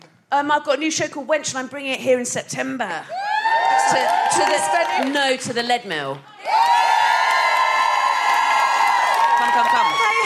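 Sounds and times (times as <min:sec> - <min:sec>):
speech: 0:00.3 - 0:06.7, 0:09.5 - 0:10.0
live crowd cheering and whooping: 0:03.1 - 0:05.2, 0:06.4 - 0:10.2.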